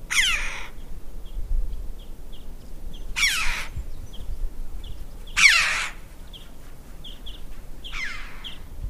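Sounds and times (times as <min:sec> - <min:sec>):
Red-billed chough uttering rasping grating calls: 0:00.1 - 0:00.8, 0:03.2 - 0:03.8, 0:05.3 - 0:08.7.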